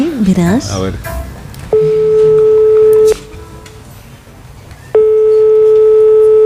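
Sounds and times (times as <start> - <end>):
speech: 0.2 - 1.1
telephone ringback tone: 1.7 - 3.6, 5.0 - 6.4.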